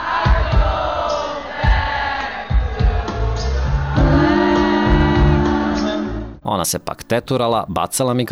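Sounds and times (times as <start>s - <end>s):
large concert crowd singing lyrics over live music: 0.0s - 6.4s
live music drum and bass thumps: 1.6s - 5.7s
people in concert crowd shouting: 4.0s - 6.0s
speech: 6.5s - 8.2s.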